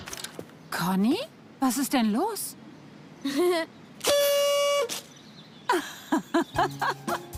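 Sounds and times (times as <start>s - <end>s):
speech: 0.9s - 2.5s, 3.2s - 3.8s, 6.5s - 7.0s
toy party horn blaring: 4.0s - 5.1s
laughter: 5.7s - 7.3s.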